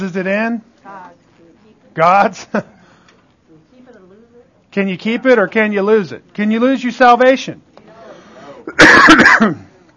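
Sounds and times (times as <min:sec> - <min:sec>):
speech: 0:00.0 - 0:00.7, 0:02.0 - 0:02.8, 0:04.7 - 0:07.6, 0:08.7 - 0:09.7
throat-clearing cough from something caught in the throat: 0:08.6 - 0:09.7.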